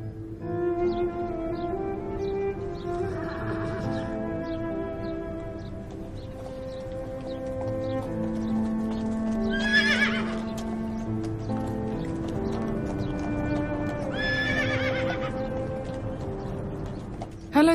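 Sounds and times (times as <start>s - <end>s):
steady droning musical background: 0.0s - 17.7s
clip-clop of horse hooves: 2.5s - 17.7s
horse whinnying: 9.4s - 10.8s, 14.0s - 15.5s.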